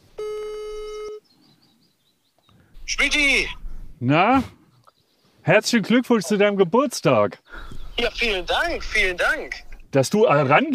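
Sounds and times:
telephone ringing tone as a call is placed: 0.2s - 1.2s
speech: 3.0s - 4.6s, 5.5s - 10.7s.

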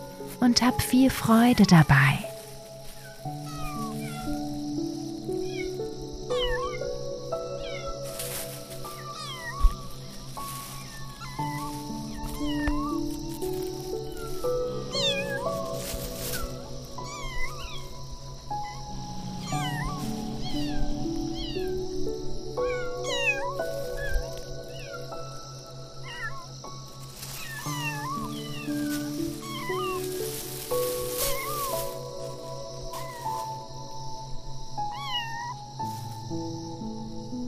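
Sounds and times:
soft steady music: 0.0s - 37.4s
speech: 0.4s - 2.3s
kittens meowing: 2.3s - 4.5s, 5.1s - 6.8s, 7.5s - 21.8s, 22.6s - 25.1s, 26.0s - 26.5s, 27.3s - 32.0s, 32.9s - 33.2s, 34.9s - 35.6s.

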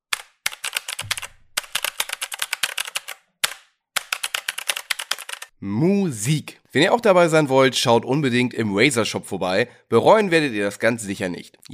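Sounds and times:
typing on a gaming keyboard with mechanical switches: 0.0s - 5.5s
speech: 5.6s - 11.7s.

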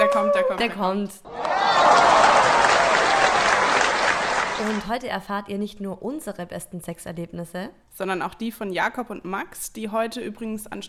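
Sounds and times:
speech: 0.6s - 1.3s, 4.6s - 10.8s
applause sound effect of group clapping: 1.3s - 4.9s.

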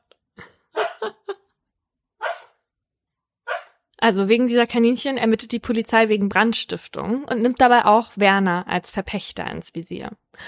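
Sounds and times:
sleeping dreaming dog barking with soft woofs: 2.2s - 2.6s, 3.5s - 3.8s
speech: 4.0s - 10.4s.

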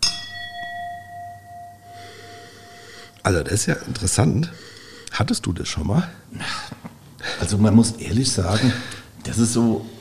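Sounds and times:
wine glasses clinking in a toast at a wine tasting: 0.0s - 3.2s
speech: 3.3s - 6.8s, 7.4s - 9.9s.

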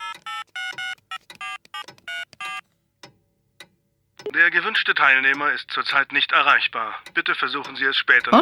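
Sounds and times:
mobile phone keypad tones while dialing: 0.0s - 2.7s
speech: 4.3s - 8.4s.

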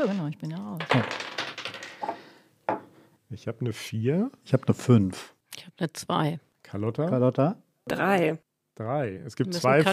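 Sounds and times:
speech: 0.0s - 1.4s, 3.3s - 9.9s
dice rolled in a game clattering across a hard surface: 0.8s - 2.2s.

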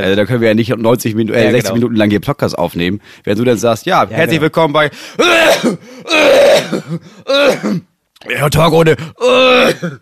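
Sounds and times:
speech: 0.0s - 10.0s
harsh dry coughing with voiced rasp: 5.2s - 8.0s, 9.2s - 10.0s.

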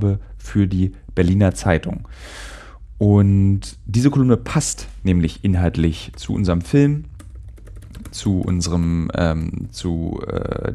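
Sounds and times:
speech: 0.0s - 7.1s, 8.1s - 10.7s
typing on a computer keyboard: 6.0s - 9.6s.

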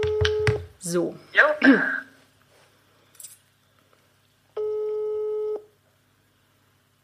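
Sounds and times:
telephone ringing tone of an outgoing call: 0.0s - 0.6s, 4.6s - 5.7s
speech: 0.9s - 2.0s.

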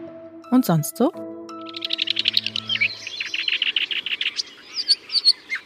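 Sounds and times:
speech: 0.5s - 1.2s
lively birdsong with rapid high chirps and trills: 1.5s - 5.6s.

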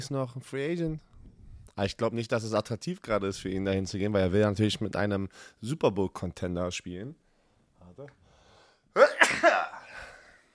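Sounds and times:
speech: 0.0s - 1.1s, 1.8s - 7.2s, 8.0s - 8.2s
person sneezing: 9.0s - 10.1s.

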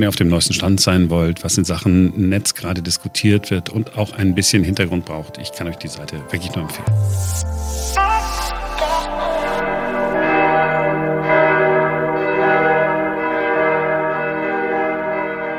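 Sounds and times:
speech: 0.0s - 8.6s
church bells ringing in Germany to call Christians to prayer: 0.0s - 15.5s.

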